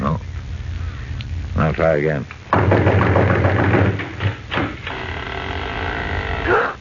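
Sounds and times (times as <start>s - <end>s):
steady mechanical hum: 0.0s - 6.8s
speech: 1.7s - 3.2s
fist pounding on a wooden door with a loose latch: 2.5s - 4.8s.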